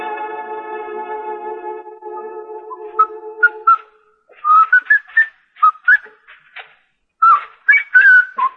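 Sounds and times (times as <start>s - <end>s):
person whistling a lively tune: 2.1s - 6.2s, 7.2s - 8.5s.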